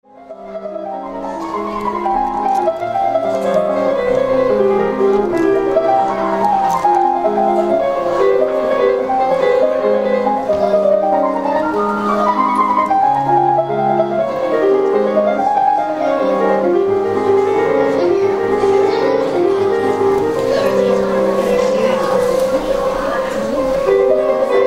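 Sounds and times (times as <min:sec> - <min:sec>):
piano playing: 0:00.0 - 0:24.6.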